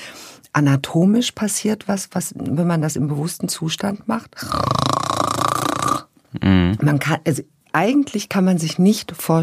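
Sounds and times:
speech: 0:00.6 - 0:05.0, 0:06.3 - 0:09.4
person imitating snoring with a rattling throat sound: 0:04.4 - 0:06.8.

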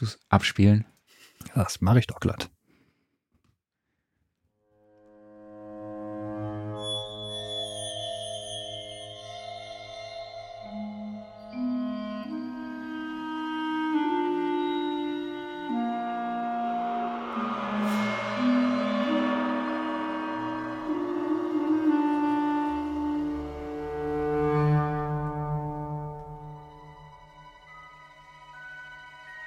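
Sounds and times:
speech: 0:00.0 - 0:02.6
sustained orchestral-style music in film sound design: 0:05.0 - 0:29.4
glockenspiel playing a bright melody in film sound design: 0:06.1 - 0:29.4.

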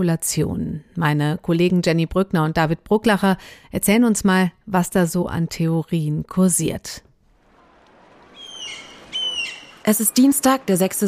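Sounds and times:
speech: 0:00.0 - 0:07.1, 0:09.8 - 0:11.0
faint open-air harbour ambience: 0:07.2 - 0:11.0
gulls screeching over a harbour: 0:07.3 - 0:11.0.

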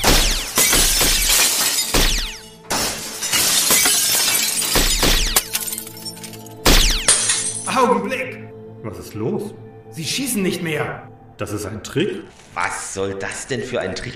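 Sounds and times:
skylight glass panes shattering: 0:00.0 - 0:07.8
skylight glass shards raining and tinkling down: 0:00.5 - 0:07.7
speech: 0:08.9 - 0:14.1.

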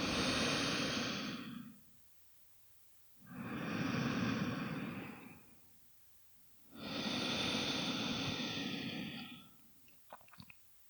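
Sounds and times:
calm breathing in and out through both nostrils: 0:00.0 - 0:01.8, 0:03.3 - 0:05.5, 0:06.7 - 0:09.6.

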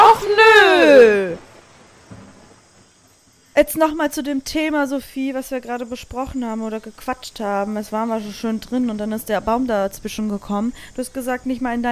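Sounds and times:
low rumble of thunder: 0:00.0 - 0:03.1
steady rain: 0:00.0 - 0:05.0
speech: 0:03.6 - 0:11.9.

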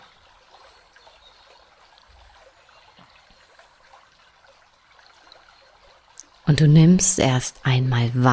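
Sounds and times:
gently babbling flowing water: 0:00.0 - 0:08.3
speech: 0:06.5 - 0:08.3.

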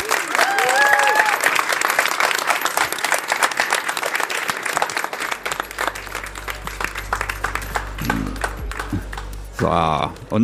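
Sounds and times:
whoops: 0:00.0 - 0:01.6
crowd applauding and cheering: 0:00.0 - 0:10.4
low hum: 0:05.3 - 0:10.4
speech: 0:09.6 - 0:10.4.

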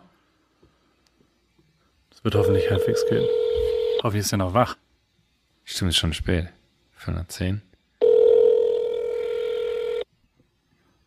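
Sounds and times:
speech: 0:02.2 - 0:04.8, 0:05.8 - 0:07.7
phone ringback tone on speakerphone: 0:02.4 - 0:04.0, 0:08.0 - 0:10.0.

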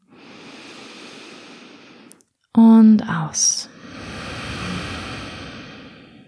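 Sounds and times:
long deep inhale during a guided breathing exercise: 0:00.0 - 0:02.2, 0:03.7 - 0:06.2
speech: 0:03.0 - 0:03.7.

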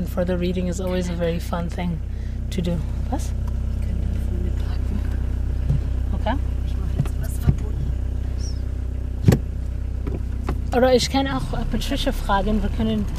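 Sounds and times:
speech: 0:00.0 - 0:03.5, 0:06.3 - 0:06.5, 0:10.8 - 0:13.1
car engine humming while reversing into a parking spot: 0:00.0 - 0:13.1.

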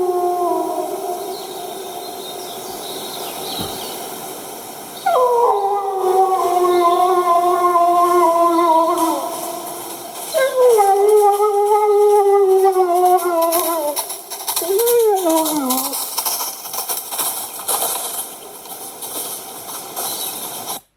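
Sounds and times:
wolf howling: 0:00.0 - 0:02.2, 0:05.0 - 0:16.0.

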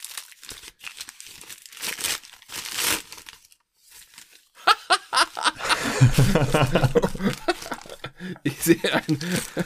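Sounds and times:
gift wrapping paper crinkling and tearing as a gift is opened: 0:00.0 - 0:05.6, 0:06.6 - 0:08.1, 0:09.1 - 0:09.6
laughter: 0:04.6 - 0:09.6
speech: 0:06.0 - 0:07.5, 0:08.2 - 0:09.6.

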